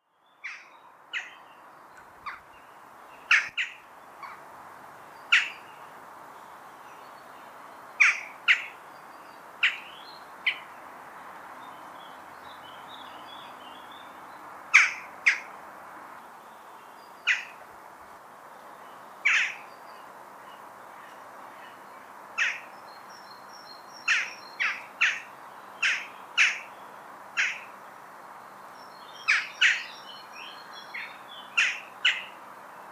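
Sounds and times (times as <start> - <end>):
bird chatter: 0.1 - 15.6, 16.2 - 17.6, 18.6 - 32.9
sharp clipped jackdaw calls: 3.3 - 4.4, 5.3 - 5.6, 8.0 - 8.8, 14.7 - 15.5, 17.2 - 17.6, 19.2 - 19.6, 22.4 - 22.7, 24.0 - 26.7, 27.4 - 27.7, 29.2 - 29.9, 30.9 - 32.4.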